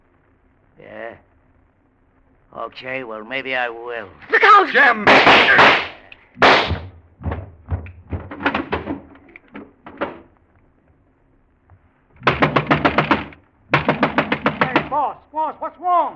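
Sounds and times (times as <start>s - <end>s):
speech: 0.8s - 1.3s, 2.5s - 6.5s
gunshots in a radio drama: 4.4s - 7.5s, 12.2s - 15.0s.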